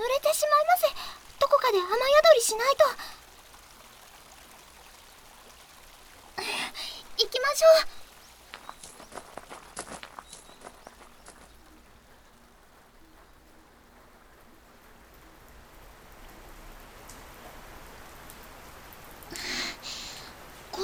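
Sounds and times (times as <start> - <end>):
sharp crunchy steps or splashes: 0.0 - 15.9
steady rain falling: 0.0 - 20.8
speech: 1.9 - 3.1.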